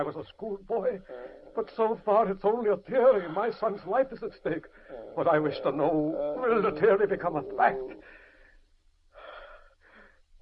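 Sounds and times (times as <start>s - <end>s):
speech: 0.0s - 8.1s
heavy labored breathing with wheezy inhales and rasping exhalations: 1.0s - 1.6s, 4.6s - 5.3s, 7.8s - 10.3s.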